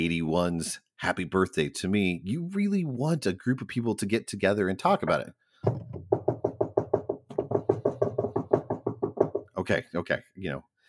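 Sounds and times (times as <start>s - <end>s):
speech: 0.0s - 5.9s, 9.7s - 10.7s
arriving guests knocking on a door: 5.6s - 9.6s.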